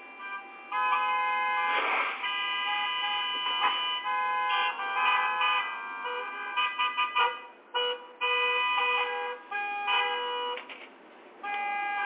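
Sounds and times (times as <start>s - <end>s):
car horns honking in morning traffic: 0.0s - 10.7s, 11.4s - 12.0s.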